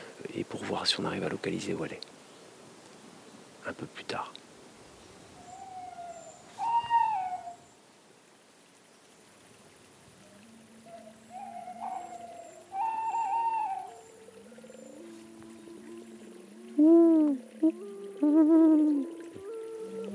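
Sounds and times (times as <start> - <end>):
faint hiss: 0.0 - 20.1
speech: 0.4 - 2.2, 3.6 - 4.4
tawny owl hooting: 5.4 - 7.7, 10.2 - 20.1.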